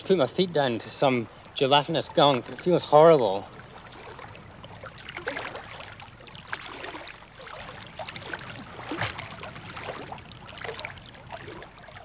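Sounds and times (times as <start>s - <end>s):
speech: 0.0s - 3.6s
person swimming and splashing through warm water: 0.0s - 12.0s.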